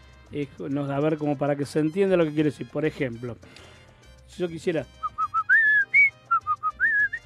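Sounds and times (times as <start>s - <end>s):
speech: 0.3s - 5.0s
person whistling a lively folk song melody: 4.9s - 7.2s.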